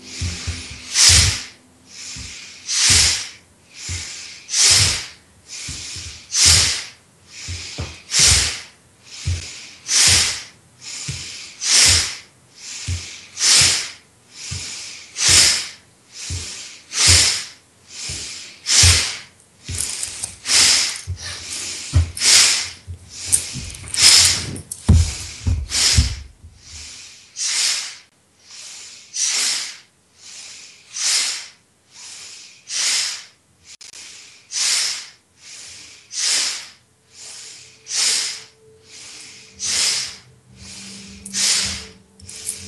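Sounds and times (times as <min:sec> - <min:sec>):
fast forceful breaths during a breathing exercise: 0:00.0 - 0:42.6.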